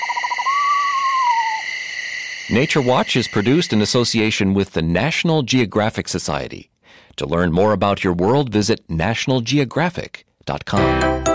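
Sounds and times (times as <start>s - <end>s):
pair of screech owls calling in an undulating trill: 0.0s - 3.9s
hum of insects: 0.0s - 5.4s
speech: 2.5s - 11.3s.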